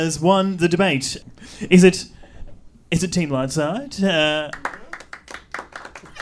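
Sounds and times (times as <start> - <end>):
speech: 0.0 - 2.2, 2.9 - 4.8
scattered audience applause: 4.5 - 6.1.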